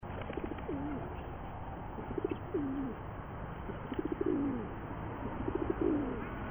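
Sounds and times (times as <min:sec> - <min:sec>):
rock pigeon cooing: 0:00.1 - 0:01.4, 0:02.0 - 0:03.1, 0:03.7 - 0:06.4.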